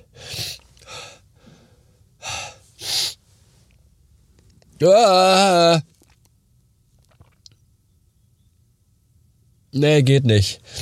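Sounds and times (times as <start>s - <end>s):
sharp breathy gasping inhales of an aborted sneeze: 0.0s - 3.2s
speech: 4.8s - 5.9s, 9.8s - 10.8s.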